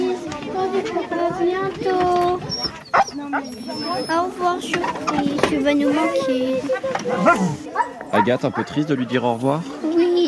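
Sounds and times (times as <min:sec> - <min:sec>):
speech: 0:00.8 - 0:09.9
dog whimpering in the Jura: 0:02.5 - 0:04.2
dog barking in the Jura: 0:02.9 - 0:03.5, 0:07.2 - 0:09.2.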